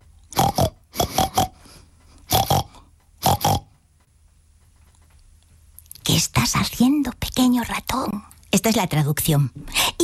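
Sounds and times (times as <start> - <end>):
person imitating pig grunting oinks: 0.3 - 1.6, 2.3 - 3.7
speech: 6.2 - 9.8.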